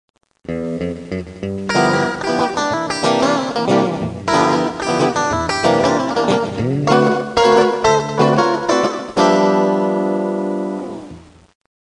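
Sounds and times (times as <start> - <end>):
rockabilly guitars: 0.4 - 11.5.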